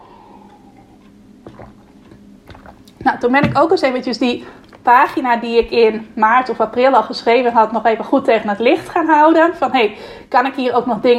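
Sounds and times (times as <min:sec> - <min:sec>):
mouth and swallowing noises from a sip of water: 0:00.2 - 0:03.6
speech: 0:03.0 - 0:11.1.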